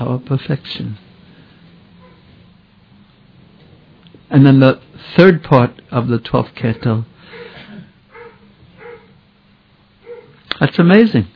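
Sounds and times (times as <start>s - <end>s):
speech: 0.0s - 1.1s, 4.3s - 7.5s, 10.6s - 11.3s
low hum: 0.0s - 11.3s
dog barking: 2.0s - 2.3s, 6.7s - 9.2s, 10.0s - 10.4s.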